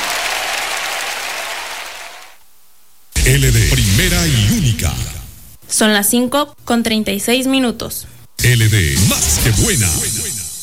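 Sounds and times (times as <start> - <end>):
loud dense applause from a crowd: 0.0 - 2.4
speech: 3.3 - 5.1, 5.7 - 10.2.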